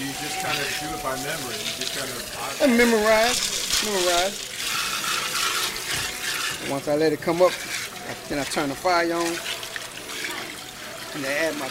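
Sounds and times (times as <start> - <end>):
water running into a pot for red beans and rice: 0.0 - 11.6
speech: 0.2 - 4.7, 6.6 - 9.5, 11.2 - 11.6.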